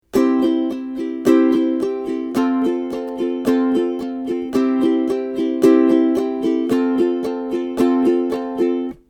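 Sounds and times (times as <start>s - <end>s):
ukulele: 0.0s - 9.0s.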